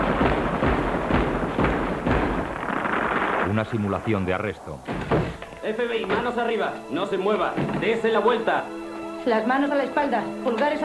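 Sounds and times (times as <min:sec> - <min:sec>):
gunshots at a shooting range: 0:00.0 - 0:04.0
speech: 0:03.6 - 0:10.8.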